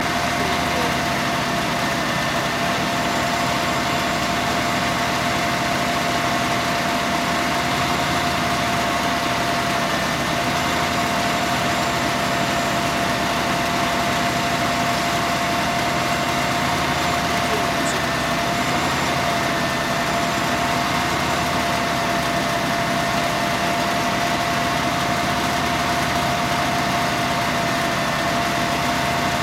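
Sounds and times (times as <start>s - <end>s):
construction vehicle engine: 0.0s - 29.4s.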